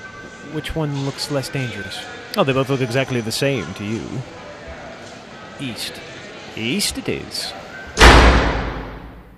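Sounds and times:
speech: 0.4 - 4.5, 5.6 - 7.6
heavy door swinging open: 8.0 - 9.3.

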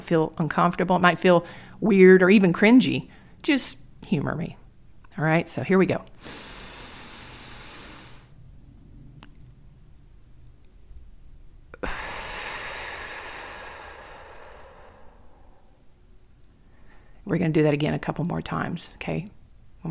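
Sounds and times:
speech: 0.1 - 4.6, 5.2 - 6.5, 17.3 - 19.8
slow deep meditative breathing: 1.4 - 1.8, 6.2 - 8.6, 11.7 - 16.0, 16.6 - 17.2.

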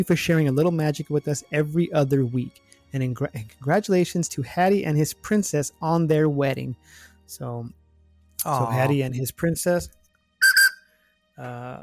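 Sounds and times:
speech: 0.0 - 7.8, 8.4 - 10.0, 11.4 - 11.8
theme park mine train steam whistle blasts: 10.4 - 10.9.

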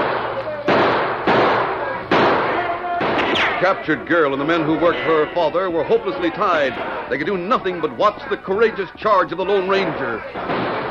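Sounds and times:
gunshots fired by outlaws in a western radio drama: 0.0 - 3.8, 9.8 - 10.8
speech: 3.6 - 10.7.

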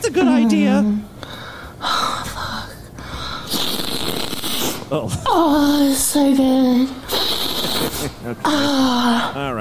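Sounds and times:
speech: 0.1 - 1.2, 4.9 - 7.3, 8.0 - 9.5
sharp snorting inhale through the nose: 3.4 - 4.8, 7.1 - 8.2.

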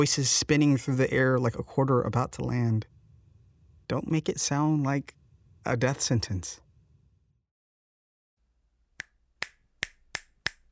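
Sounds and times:
speech: 0.0 - 2.9, 3.9 - 6.6
finger snaps: 9.0 - 10.6.

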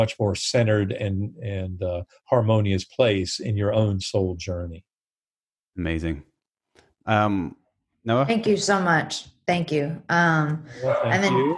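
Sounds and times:
speech: 0.0 - 4.9, 5.8 - 6.3, 7.1 - 11.5
dogs yipping and barking excitedly: 10.8 - 11.5.

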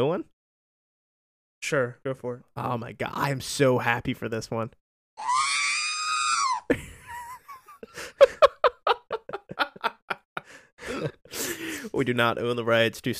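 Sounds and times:
speech: 0.0 - 0.3, 1.6 - 5.4, 12.0 - 13.1
shrill sustained electronic robot scream: 5.2 - 6.6
laughter: 6.7 - 11.8.

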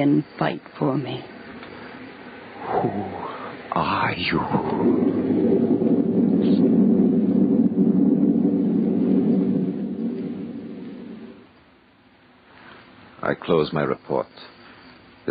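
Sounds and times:
speech: 0.0 - 1.4, 2.7 - 6.3, 13.2 - 14.6
loud deep thunder crash with lightning strike: 4.0 - 11.6.

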